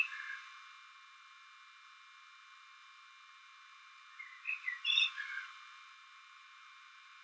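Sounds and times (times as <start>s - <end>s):
common blackbird Turdus merula whistled phrase: 4.2s - 5.4s.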